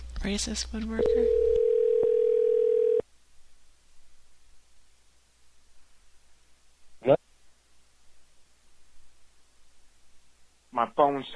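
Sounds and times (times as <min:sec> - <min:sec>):
speech: 0:00.2 - 0:01.4, 0:11.0 - 0:11.3
telephone dial tone: 0:01.0 - 0:03.0
faint hiss: 0:03.1 - 0:11.3.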